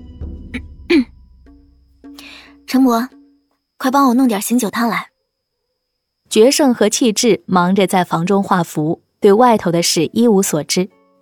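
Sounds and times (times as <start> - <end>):
speech: 0.6 - 1.1, 2.8 - 3.2, 3.8 - 5.1, 6.3 - 11.0
woman clearing her throat: 0.9 - 1.1.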